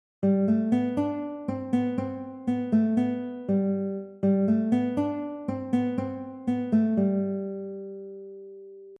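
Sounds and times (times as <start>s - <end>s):
guitar playing major scale melody: 0.2s - 8.9s.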